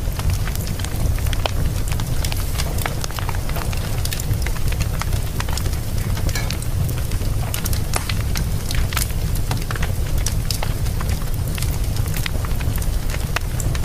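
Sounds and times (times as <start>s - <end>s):
wood fire crackling in a fireplace: 0.0s - 13.8s.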